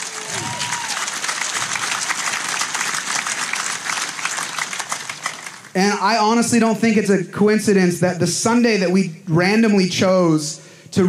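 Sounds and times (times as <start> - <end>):
person whooping: 0.0 - 1.1
crowd applauding: 0.0 - 6.4
speech: 5.8 - 11.0.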